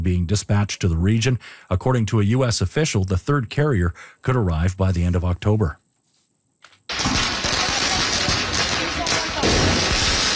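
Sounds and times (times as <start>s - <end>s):
speech: 0.0s - 5.8s
firecrackers exploding during street protest: 6.9s - 10.3s.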